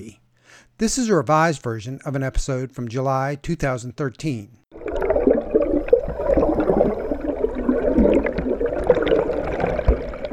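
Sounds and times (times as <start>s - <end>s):
speech: 0.0s - 0.2s, 0.8s - 4.6s
underwater river gurgling and bubbling recorded by a kayaker: 4.7s - 10.3s.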